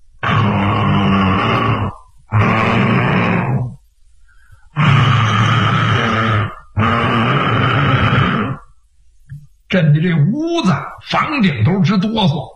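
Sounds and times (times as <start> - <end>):
voice imitating loud snoring of a sleeping man: 0.2 - 3.8, 4.8 - 8.7
speech: 9.7 - 12.5.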